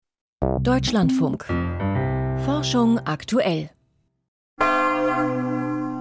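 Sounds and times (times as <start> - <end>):
speech: 0.4 - 1.9, 2.5 - 3.8
church bell ringing: 4.6 - 6.0.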